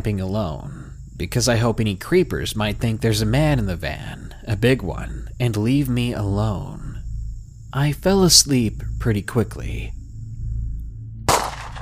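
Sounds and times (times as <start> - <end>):
speech: 0.0 - 6.8, 7.7 - 10.0
low steady hum: 0.0 - 11.7
distant gunshot from the other side of a mountain range: 11.3 - 11.7.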